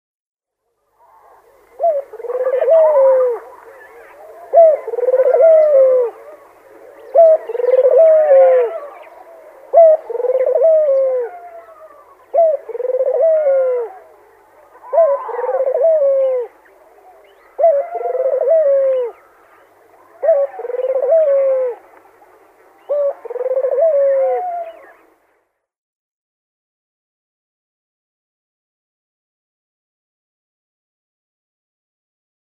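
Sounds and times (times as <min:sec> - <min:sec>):
African Collared-Dove male display call: 0:00.9 - 0:25.2.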